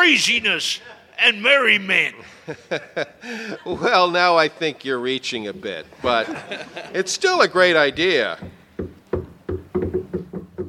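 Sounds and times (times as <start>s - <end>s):
speech: 0.1s - 8.9s
laughter: 2.2s - 4.2s, 6.0s - 7.2s
knocking on a door: 8.4s - 10.6s.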